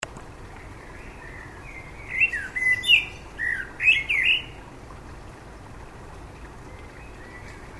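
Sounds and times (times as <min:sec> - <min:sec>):
common blackbird singing: 0:00.8 - 0:04.6, 0:06.7 - 0:07.7.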